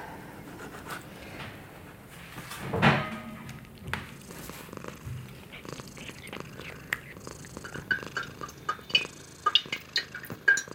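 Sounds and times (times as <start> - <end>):
female cat purring softly: 4.1 - 10.7.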